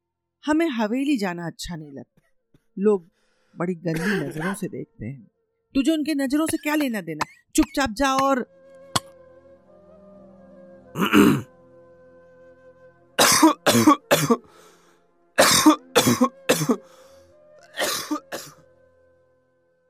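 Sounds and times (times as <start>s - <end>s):
speech: 0.4s - 2.2s, 2.8s - 8.6s, 11.0s - 11.5s, 13.4s - 14.7s, 15.4s - 17.0s
man coughing in harsh hacking bursts: 3.9s - 4.7s, 11.0s - 11.5s, 13.2s - 14.5s, 15.4s - 16.8s, 17.8s - 18.6s.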